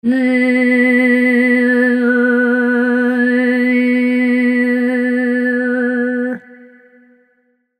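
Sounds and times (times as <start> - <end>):
girl singing strangely: 0.0 - 6.7.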